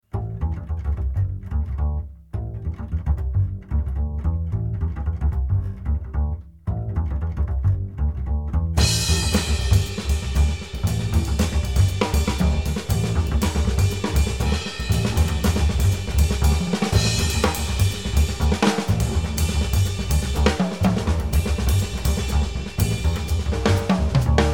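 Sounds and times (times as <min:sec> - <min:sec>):
funky bass ostinato: 0:00.1 - 0:24.5
drums: 0:08.8 - 0:24.5.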